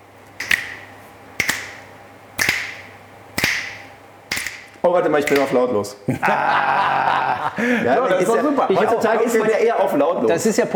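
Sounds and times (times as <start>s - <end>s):
finger snapping: 0.4s - 0.8s, 1.4s - 1.8s, 2.4s - 4.6s
speech: 4.8s - 10.7s
laughter: 6.1s - 9.9s.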